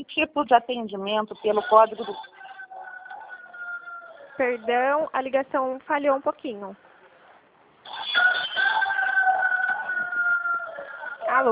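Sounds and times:
speech: 0:00.0 - 0:02.4, 0:04.4 - 0:06.8, 0:11.3 - 0:11.5
rooster crowing: 0:02.0 - 0:04.7, 0:07.9 - 0:11.5.

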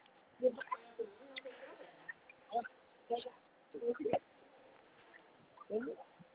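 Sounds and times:
people in conversation: 0:00.4 - 0:04.2, 0:05.7 - 0:06.1
pet parrot squawking imitating a woman: 0:00.5 - 0:04.2, 0:05.1 - 0:06.1.

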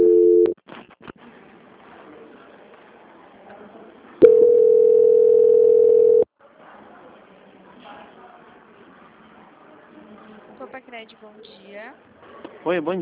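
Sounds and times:
telephone line tones during a call transfer: 0:00.0 - 0:00.6, 0:04.2 - 0:06.3
speech: 0:11.3 - 0:13.0.

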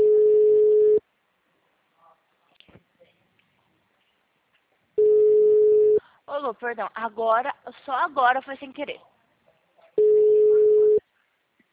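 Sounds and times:
telephone ringback tone: 0:00.0 - 0:01.0, 0:05.0 - 0:06.0, 0:10.0 - 0:11.0
speech: 0:06.5 - 0:09.1.

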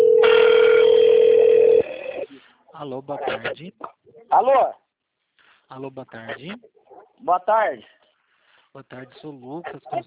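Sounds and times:
telephone tone for an incoming call: 0:00.0 - 0:02.3
speech: 0:02.8 - 0:04.8, 0:05.7 - 0:08.0, 0:08.7 - 0:10.0.

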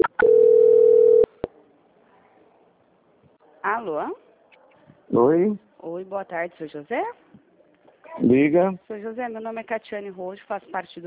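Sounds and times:
telephone line tone during a call transfer: 0:00.0 - 0:01.3
speech: 0:03.8 - 0:04.2, 0:05.1 - 0:07.2, 0:08.2 - 0:11.0.

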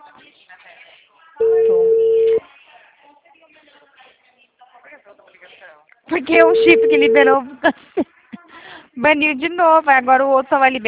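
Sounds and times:
telephone tone as a call is placed: 0:01.4 - 0:02.4, 0:06.4 - 0:07.4
speech: 0:06.1 - 0:08.1, 0:09.0 - 0:10.8.

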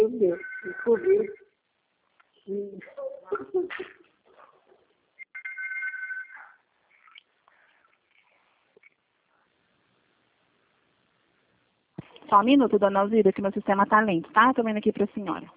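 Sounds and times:
telephone ringing: 0:00.1 - 0:01.5, 0:05.3 - 0:06.6
speech: 0:00.2 - 0:01.4, 0:12.3 - 0:15.5.

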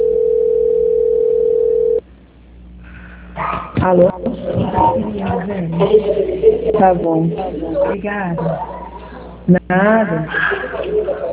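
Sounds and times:
telephone line tone during a call transfer: 0:00.0 - 0:02.0
speech: 0:03.8 - 0:08.7, 0:09.5 - 0:11.3
laughter: 0:04.3 - 0:09.5, 0:10.2 - 0:11.3.

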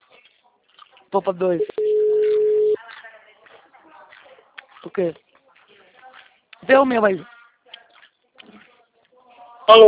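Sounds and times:
speech: 0:01.1 - 0:01.8, 0:05.0 - 0:05.3, 0:06.7 - 0:07.3, 0:09.7 - 0:09.8
telephone busy tone after a dropped call: 0:01.7 - 0:02.8.

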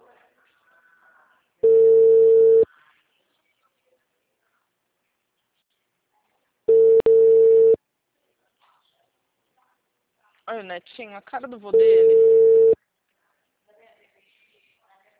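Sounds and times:
telephone busy signal tone: 0:01.6 - 0:02.6, 0:06.7 - 0:07.8, 0:11.8 - 0:12.8
speech: 0:10.5 - 0:12.3.

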